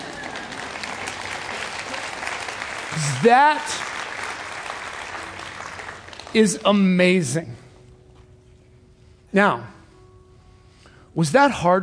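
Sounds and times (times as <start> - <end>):
applause of many hands clapping: 0.0 - 6.8
speech: 3.0 - 3.8, 6.3 - 7.6, 9.3 - 9.8, 11.2 - 11.8.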